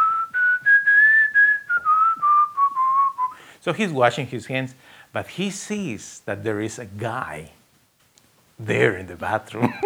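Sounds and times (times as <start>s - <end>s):
man in a bathroom whistling a Christian hymn: 0.0s - 3.5s
speech: 3.6s - 7.6s, 8.6s - 9.8s
laughter: 8.6s - 9.8s.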